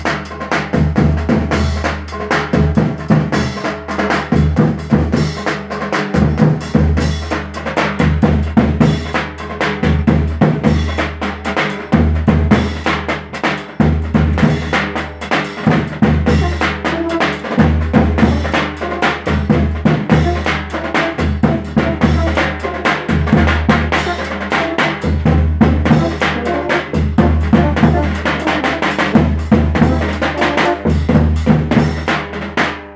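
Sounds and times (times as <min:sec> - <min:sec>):
drums at a rehearsal: 0:00.0 - 0:32.9.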